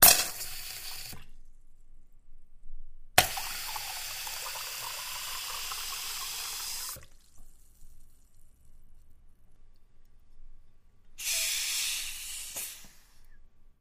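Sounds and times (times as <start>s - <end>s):
seltzer bottle water hiss blasts: 0.0s - 1.3s, 3.2s - 7.2s, 11.2s - 13.3s.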